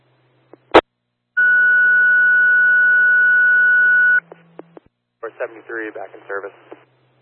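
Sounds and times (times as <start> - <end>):
low hum: 0.0 - 5.6
fire dispatch radio cancel tone: 1.4 - 4.2
radio hiss: 5.2 - 6.9
speech: 5.4 - 6.9.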